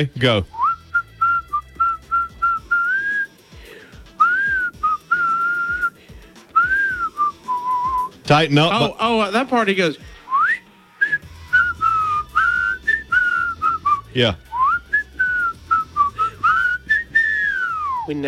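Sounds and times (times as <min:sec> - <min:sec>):
speech: 0:00.0 - 0:00.6, 0:08.3 - 0:10.1, 0:14.2 - 0:14.4, 0:18.1 - 0:18.2
person whistling a catchy song melody: 0:00.5 - 0:03.4, 0:04.2 - 0:06.0, 0:06.6 - 0:08.2, 0:10.3 - 0:18.2.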